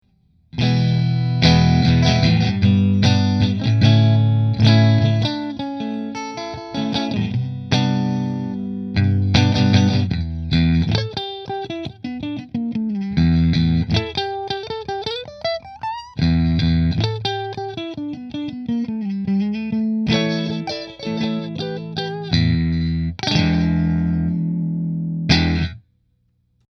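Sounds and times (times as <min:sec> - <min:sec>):
electric guitar on pickup position three: 0:00.5 - 0:25.8.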